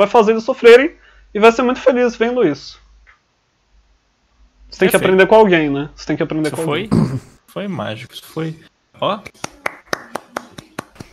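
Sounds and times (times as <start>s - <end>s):
speech: 0.0s - 2.8s, 4.7s - 9.6s
crisp evenly spaced hand claps: 9.2s - 11.1s.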